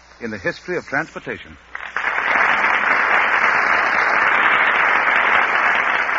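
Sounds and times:
speech: 0:00.2 - 0:01.8
large studio audience applause: 0:01.7 - 0:06.1.

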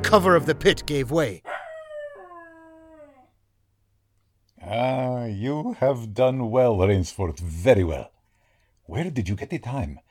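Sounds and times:
speech: 0:00.0 - 0:01.5, 0:04.6 - 0:08.1, 0:08.9 - 0:10.0
hunting dog howling after falling into pit trap: 0:01.4 - 0:03.4.

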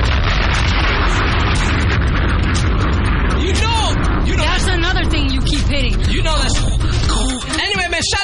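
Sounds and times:
radio station signature explosion sound effect with rumbling boom and crackling debris: 0:00.0 - 0:08.1.

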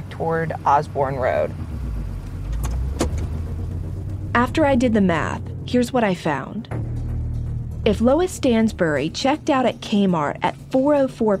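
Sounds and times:
car driving along a road: 0:00.0 - 0:11.3
speech: 0:00.2 - 0:01.7, 0:04.4 - 0:06.8, 0:07.8 - 0:11.3.

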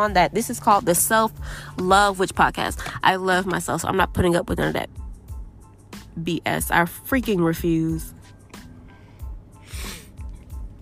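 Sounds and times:
speech: 0:00.0 - 0:05.0, 0:06.2 - 0:08.2
person sniffling: 0:09.6 - 0:10.2.

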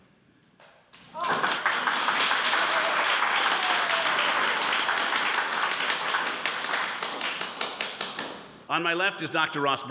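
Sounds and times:
studio audience applause: 0:01.2 - 0:08.3
speech: 0:08.8 - 0:09.8.

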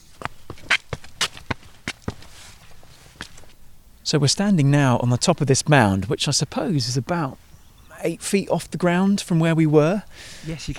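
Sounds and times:
footsteps climbing garden steps up a grassy mound: 0:00.0 - 0:03.6
speech: 0:04.1 - 0:10.7.

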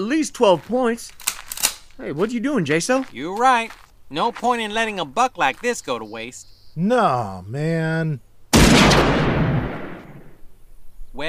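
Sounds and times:
speech: 0:00.0 - 0:01.2, 0:02.0 - 0:09.3
hunting rifle gunshot at a deer camp: 0:08.5 - 0:10.4.

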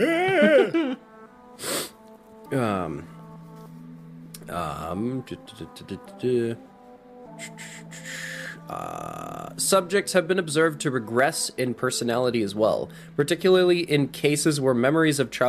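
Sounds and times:
speech: 0:00.0 - 0:00.8, 0:02.5 - 0:03.2, 0:04.5 - 0:06.7, 0:07.4 - 0:15.4
person yawning: 0:00.0 - 0:01.0, 0:07.4 - 0:09.6.

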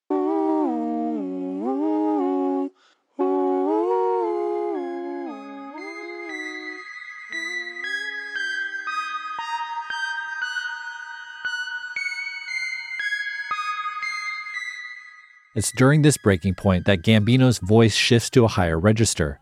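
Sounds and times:
stacked backing vocal harmony lines: 0:00.1 - 0:09.2
bright electronic synthesizer tones playing harmonies: 0:04.7 - 0:17.9
speech: 0:15.6 - 0:19.4.

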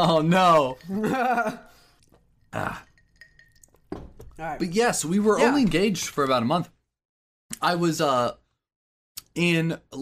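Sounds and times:
speech: 0:00.0 - 0:01.8, 0:02.5 - 0:02.9, 0:04.4 - 0:06.8, 0:07.6 - 0:08.4, 0:09.4 - 0:09.9
throaty burp: 0:02.5 - 0:02.9.

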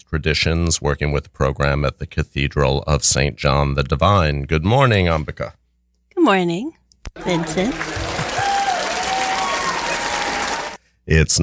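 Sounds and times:
speech: 0:00.0 - 0:05.6, 0:06.2 - 0:08.1, 0:11.1 - 0:11.4
round of applause from a group: 0:07.2 - 0:10.8.

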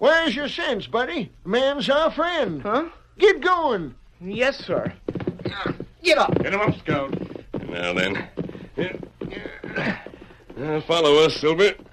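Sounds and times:
speech: 0:00.0 - 0:10.0, 0:10.6 - 0:11.8
horse hooves clip-clopping away: 0:04.2 - 0:11.9.

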